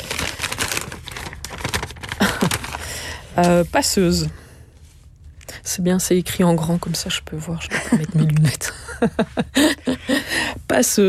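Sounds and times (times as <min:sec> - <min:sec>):
slip of paper crinkling as it is picked up and unfolded: 0:00.0 - 0:03.3
speech: 0:03.4 - 0:04.4, 0:05.7 - 0:11.0.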